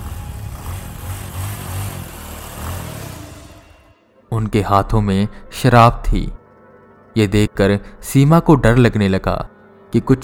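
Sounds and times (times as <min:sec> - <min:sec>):
motorcycle engines revving and droning while circling around: 0:00.0 - 0:04.0
speech: 0:04.3 - 0:06.4, 0:07.2 - 0:10.2.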